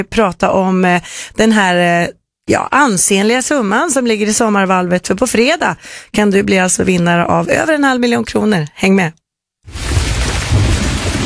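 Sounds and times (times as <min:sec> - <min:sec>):
speech: 0:00.0 - 0:10.0
deep thunder rumbling: 0:09.7 - 0:11.2
heavy rain: 0:09.7 - 0:11.2.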